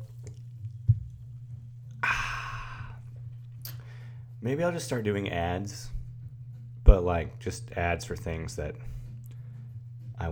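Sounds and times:
steady low hum: 0:00.0 - 0:10.3
long breathy exhale: 0:02.0 - 0:03.0
person sipping sparkling water: 0:02.0 - 0:03.0
speech: 0:04.4 - 0:06.0, 0:06.9 - 0:09.0.

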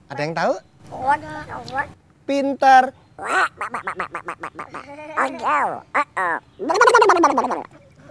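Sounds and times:
speech: 0:00.1 - 0:07.8
voice imitating a duck quacking: 0:03.2 - 0:07.7.

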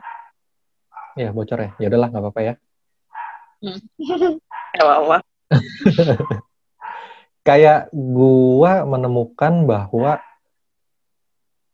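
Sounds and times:
dog barking: 0:00.0 - 0:02.0, 0:03.1 - 0:03.6, 0:04.5 - 0:04.8, 0:06.0 - 0:07.1, 0:10.0 - 0:10.4
speech: 0:01.2 - 0:02.7, 0:03.6 - 0:06.4, 0:07.4 - 0:10.3
laughter: 0:05.5 - 0:06.4.

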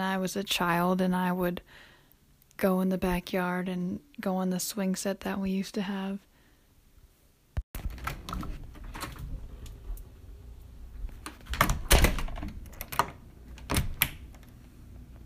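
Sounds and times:
speech: 0:00.2 - 0:01.9, 0:02.6 - 0:06.3
front door latch and handle rattling: 0:07.8 - 0:09.8, 0:11.1 - 0:14.6
front door latch click: 0:11.2 - 0:14.5
front door thudding shut: 0:11.4 - 0:14.3.

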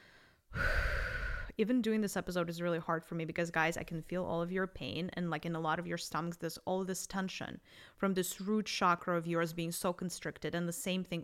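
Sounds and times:
person taking a deep breath during guided meditation: 0:00.0 - 0:01.5
speech: 0:01.6 - 0:11.2.

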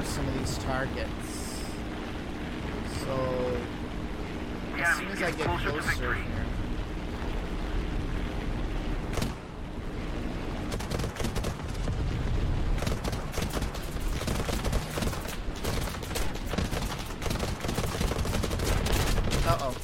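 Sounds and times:
constant loud rumble: 0:00.0 - 0:19.8
speech: 0:00.7 - 0:01.3, 0:03.1 - 0:03.5, 0:04.8 - 0:06.4
rapid gunfire bursts in an aerial combat video game: 0:10.7 - 0:12.0, 0:12.7 - 0:19.8.

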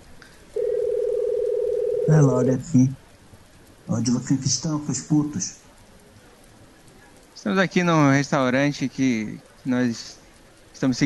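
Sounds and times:
steady single-pitch telephone tone as a call is dialed: 0:00.6 - 0:02.3
speech: 0:02.1 - 0:03.0, 0:03.9 - 0:05.6, 0:07.4 - 0:10.2, 0:10.8 - 0:11.0.

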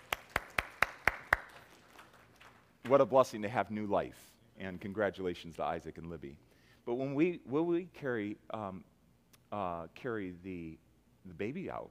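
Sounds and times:
slow hand claps at a church gathering welcoming a newborn: 0:00.0 - 0:02.6
speech: 0:02.9 - 0:08.9, 0:09.5 - 0:11.8.

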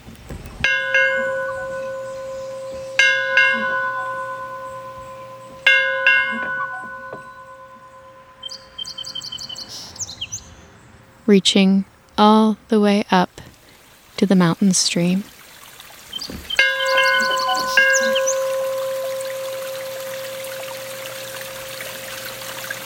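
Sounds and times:
bell echoing through a valley: 0:00.6 - 0:09.7, 0:16.6 - 0:22.2
songbirds chirping: 0:00.8 - 0:22.8
speech: 0:11.3 - 0:13.3, 0:14.3 - 0:15.3.

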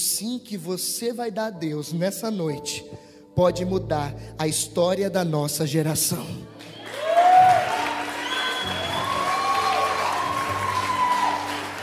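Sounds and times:
speech: 0:00.2 - 0:06.6
large audience applauding: 0:06.5 - 0:11.8
audience cheers and high whoops: 0:06.6 - 0:11.8.

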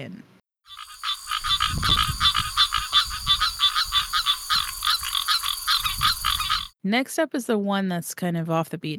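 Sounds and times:
speech: 0:00.0 - 0:00.8, 0:06.8 - 0:08.9
chorus of green tree frogs calling: 0:00.7 - 0:06.8.

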